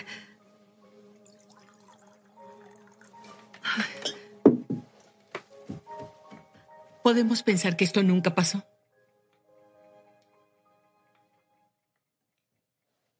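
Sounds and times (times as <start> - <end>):
liquid poured to refill a glass for a toast: 1.0 - 3.6
speech: 7.1 - 8.7.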